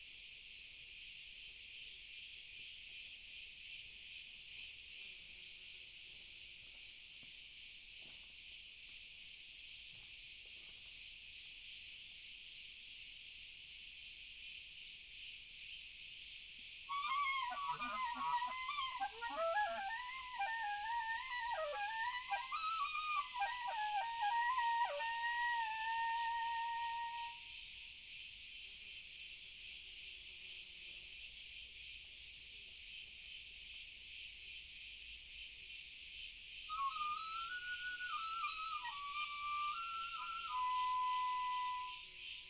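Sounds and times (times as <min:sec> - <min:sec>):
very distant chorus of crickets: 0:00.0 - 0:42.4.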